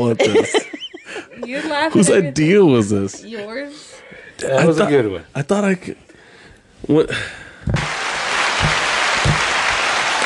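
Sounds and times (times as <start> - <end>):
speech: 0.0 - 6.0, 6.9 - 7.8
audience applause: 7.8 - 10.2.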